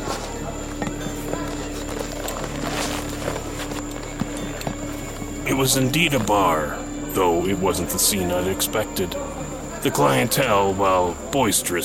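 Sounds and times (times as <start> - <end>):
hooves of a horse with a rider clip-clopping: 0.0 - 6.4
steady low hum: 0.0 - 11.8
speech: 5.6 - 11.8.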